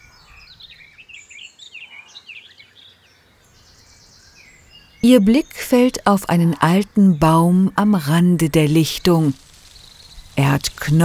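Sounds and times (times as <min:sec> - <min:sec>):
distant birds chirping: 0:00.0 - 0:11.0
soft outdoor hum: 0:00.0 - 0:11.0
speech: 0:05.0 - 0:09.4, 0:10.4 - 0:11.0.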